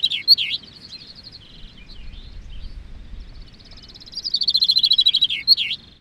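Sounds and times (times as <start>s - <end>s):
chaffinch song in Gistel: 0.0s - 5.9s
faint rumble: 1.1s - 4.2s.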